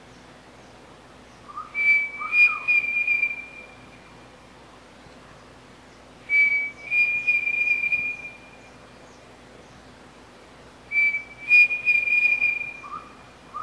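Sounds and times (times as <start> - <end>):
pavonine cuckoo giving whistled phrases: 1.5 - 4.1, 6.3 - 8.8, 10.9 - 13.6.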